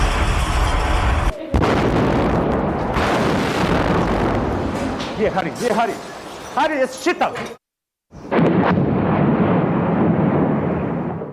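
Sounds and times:
heavy artillery shelling explosions during a city siege: 0:00.0 - 0:05.4, 0:08.2 - 0:11.3
speech: 0:05.2 - 0:07.6.

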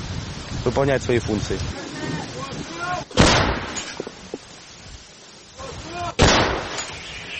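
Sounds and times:
speech: 0:00.6 - 0:02.3
artillery cannon shots fired by soldiers in a war: 0:03.1 - 0:04.0, 0:06.2 - 0:07.1.

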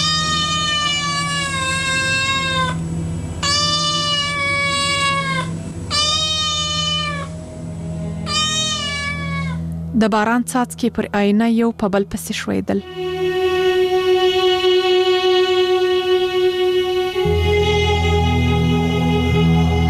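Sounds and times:
cat meowing outside a window: 0:00.0 - 0:02.8, 0:03.4 - 0:07.4, 0:08.2 - 0:09.7
low constant hum: 0:00.0 - 0:19.8
speech: 0:10.0 - 0:13.0.

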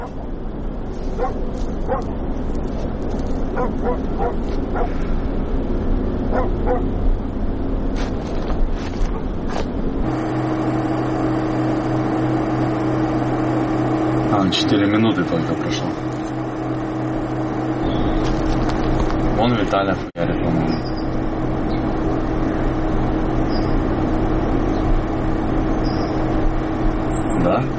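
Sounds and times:
engine rumble: 0:00.0 - 0:27.7
dog barking: 0:01.2 - 0:02.1, 0:03.5 - 0:05.0, 0:06.3 - 0:06.9
speech: 0:01.2 - 0:05.4, 0:06.3 - 0:07.4, 0:14.5 - 0:16.4, 0:19.4 - 0:20.8.

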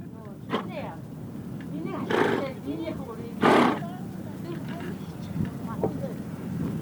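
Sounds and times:
voices murmuring: 0:00.0 - 0:06.2
horse whinnying: 0:03.4 - 0:03.8.

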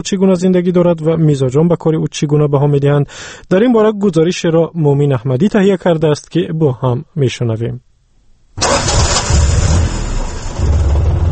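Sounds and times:
speech: 0:00.0 - 0:07.9, 0:08.6 - 0:09.0
old Soviet taxi car engine starting and idling in the Vose district near Kulob: 0:08.6 - 0:11.3.

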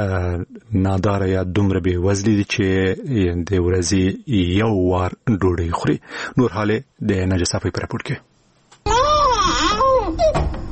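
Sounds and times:
speech: 0:00.0 - 0:08.3
malnourished child wailing: 0:08.8 - 0:10.5.

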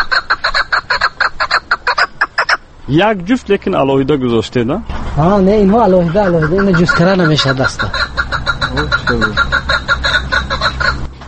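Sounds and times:
caged partridge calling: 0:00.0 - 0:02.7, 0:05.4 - 0:11.2
speech: 0:02.9 - 0:08.0, 0:08.8 - 0:09.5.

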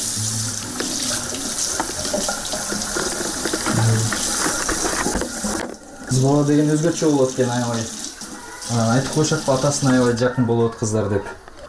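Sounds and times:
running tap water while a baby is bathed: 0:00.0 - 0:10.2
speech: 0:06.1 - 0:08.0, 0:08.7 - 0:11.6.

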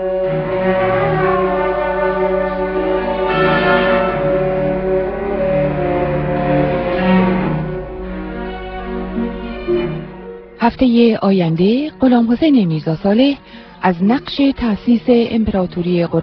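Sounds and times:
church bells ringing: 0:00.0 - 0:09.9
speech: 0:10.8 - 0:16.2.

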